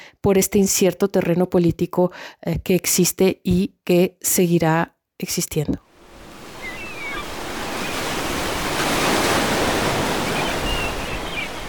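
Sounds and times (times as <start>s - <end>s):
speech: 0.2s - 5.9s
Mediterranean Sea waves washing onto the shore: 5.9s - 11.6s
faint bird calls chirping: 6.5s - 8.1s, 10.1s - 11.6s.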